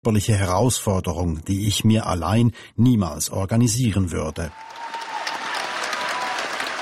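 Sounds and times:
speech: 0.0 - 4.8
standing ovation applause in a full theatre hall: 4.5 - 6.8.

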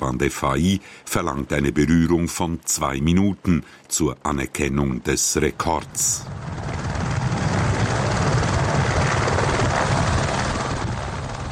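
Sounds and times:
speech: 0.1 - 6.8
helicopter rotor chop: 5.4 - 11.5.

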